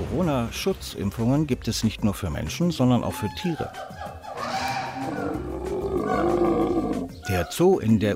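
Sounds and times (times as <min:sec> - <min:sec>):
speech: 0:00.2 - 0:04.2, 0:06.1 - 0:08.1
big cat roaring: 0:04.4 - 0:07.1.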